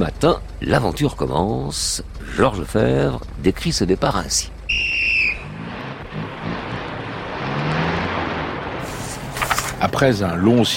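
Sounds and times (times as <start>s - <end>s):
speech: 0.0s - 4.6s, 10.0s - 10.7s
convoy of old expedition cars with trailers roaring off: 0.0s - 10.7s
shrill whistle: 4.7s - 5.6s.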